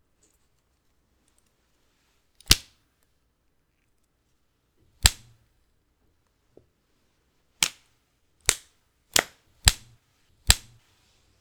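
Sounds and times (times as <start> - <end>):
new whip cracking: 5.0 - 5.4, 9.2 - 10.8.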